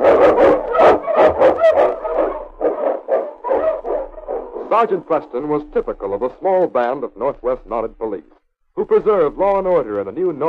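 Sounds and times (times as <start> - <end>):
husky lead dog barking and yelping: 0.0 - 4.7
speech: 4.8 - 10.4.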